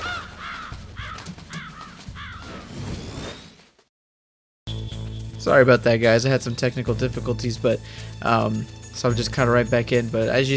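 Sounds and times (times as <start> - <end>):
raven cawing in harsh rasping calls: 0.0 - 2.7
speech: 5.4 - 10.5.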